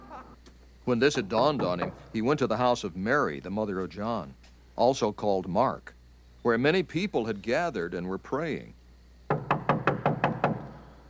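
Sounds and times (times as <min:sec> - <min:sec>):
speech: 0:00.9 - 0:08.8
knocking on a door: 0:09.3 - 0:10.7.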